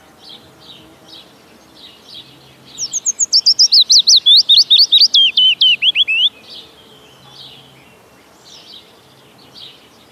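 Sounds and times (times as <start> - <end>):
willow warbler singing: 0.0 - 10.1.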